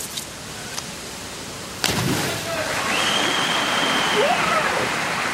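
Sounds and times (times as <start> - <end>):
diver splashing into a pool: 1.8 - 5.1.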